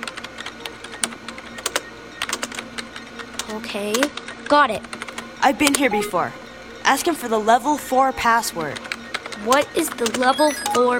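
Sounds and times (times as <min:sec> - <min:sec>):
typing on a keyboard: 0:00.0 - 0:05.8, 0:08.6 - 0:10.9
speech: 0:03.5 - 0:10.9.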